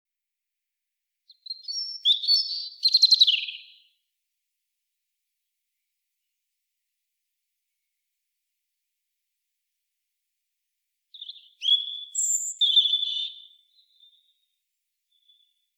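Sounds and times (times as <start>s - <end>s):
European robin singing: 1.3s - 4.0s, 11.1s - 15.7s.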